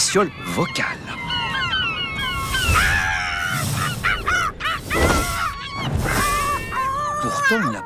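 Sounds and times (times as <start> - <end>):
gulls crying: 0.0 - 7.8
outdoor noise: 0.0 - 7.8
speech: 0.1 - 1.2, 7.2 - 7.8.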